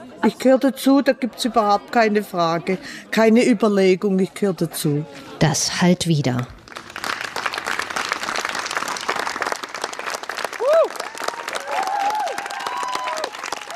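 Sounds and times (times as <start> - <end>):
speech: 0.2 - 6.6
large audience applauding after a theater performance: 6.6 - 13.7
high whoops and cheers from the audience: 10.6 - 13.7.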